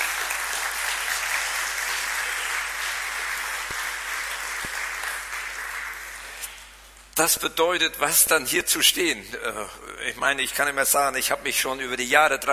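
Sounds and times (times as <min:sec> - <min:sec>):
audience applause given as encouragement: 0:00.0 - 0:06.4
speech: 0:07.2 - 0:12.5.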